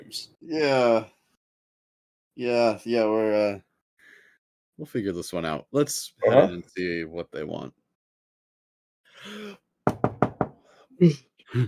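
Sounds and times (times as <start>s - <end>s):
speech: 0.1s - 1.2s, 2.4s - 3.7s, 4.8s - 7.8s, 11.0s - 11.6s
brief vocal murmurs: 6.2s - 6.6s
knocking on a glass door: 9.9s - 10.6s.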